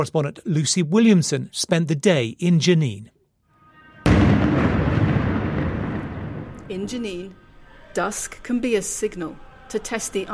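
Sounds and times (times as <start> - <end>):
speech: 0.0 - 3.2, 6.7 - 7.4, 8.0 - 10.3
gunfire in a refugee camp in Jenin West Bank: 4.1 - 6.9
explosion in a refugee camp in Jenin West Bank: 4.1 - 7.1.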